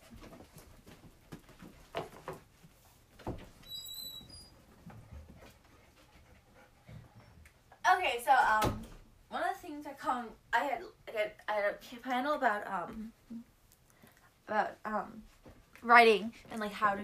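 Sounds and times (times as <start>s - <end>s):
dogs panting and moving about indoors: 0.0s - 3.6s, 4.2s - 7.7s
brief high squeak: 3.6s - 4.6s
speech: 8.0s - 8.8s, 9.8s - 13.2s, 14.5s - 15.2s, 15.8s - 17.0s.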